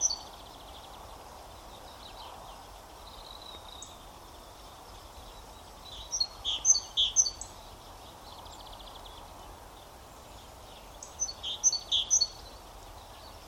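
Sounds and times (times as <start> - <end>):
great tit Parus major calling: 0.0 - 0.4, 5.4 - 7.7, 10.8 - 13.4
constant low hiss: 0.0 - 13.4.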